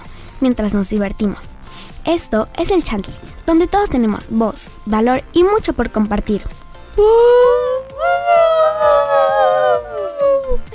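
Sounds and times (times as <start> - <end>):
speech: 0.4 - 8.9
several voices imitating a siren wail: 7.4 - 10.6.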